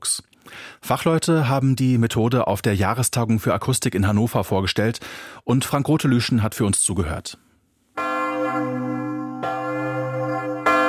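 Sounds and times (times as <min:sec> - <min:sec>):
speech: 0:00.9 - 0:07.5
clapper striking a church bell: 0:08.0 - 0:10.8.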